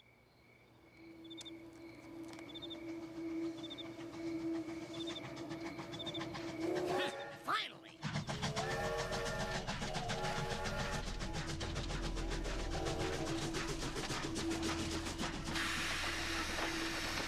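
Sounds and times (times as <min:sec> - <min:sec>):
birds chirping: 0:00.0 - 0:11.5
train rumbling past on an active railroad: 0:00.8 - 0:17.2
person speaking: 0:07.1 - 0:08.1.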